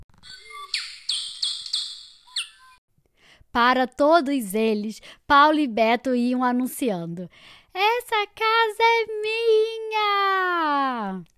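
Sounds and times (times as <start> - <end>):
birds chirping with bright high-pitched tweets and trill: 0.2 - 2.8
speech: 3.6 - 11.3.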